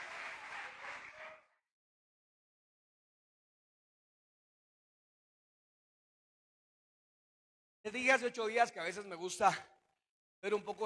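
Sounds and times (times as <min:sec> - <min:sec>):
congregation applauding: 0:00.0 - 0:01.5
speech: 0:07.9 - 0:09.8, 0:10.4 - 0:10.8.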